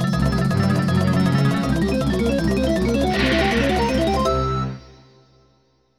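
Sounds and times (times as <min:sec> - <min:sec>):
transformation sound effect: 0:00.2 - 0:04.9.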